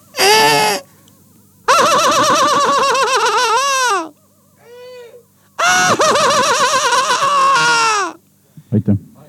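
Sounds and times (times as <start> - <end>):
gulls giving raucous laughing calls: 1.6 - 4.6, 5.6 - 8.2.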